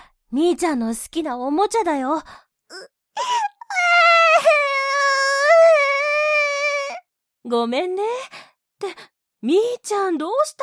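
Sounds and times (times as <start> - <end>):
speech: 0.3 - 5.0, 7.4 - 10.6
small child crying for an absent mother: 2.7 - 7.0.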